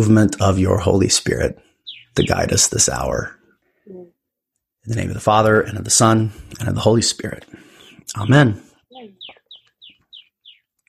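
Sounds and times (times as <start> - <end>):
speech: 0.0 - 3.4, 4.8 - 9.2
bird chirping outdoors: 1.6 - 3.6, 7.6 - 10.8.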